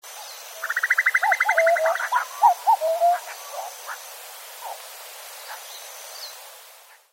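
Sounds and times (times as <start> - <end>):
cuckoo calling: 0.6 - 3.7.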